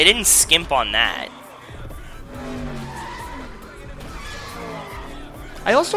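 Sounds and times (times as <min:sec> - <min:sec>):
speech: 0:00.0 - 0:01.4, 0:05.6 - 0:05.9
car tires squealing in a burnout: 0:01.3 - 0:05.9
car engine roaring: 0:01.8 - 0:05.7.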